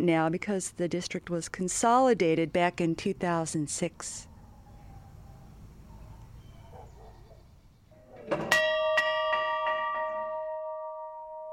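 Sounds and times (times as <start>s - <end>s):
speech: 0.0s - 4.3s
old school bell ringing: 8.3s - 11.5s.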